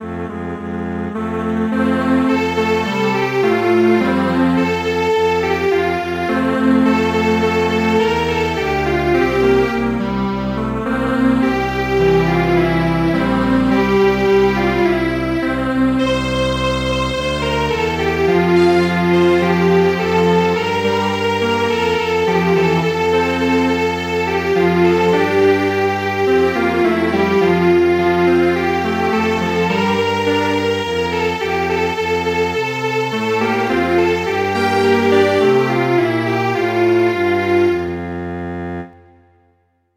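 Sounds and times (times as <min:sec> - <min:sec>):
string quartet playing traditional music: 0:01.1 - 0:39.0.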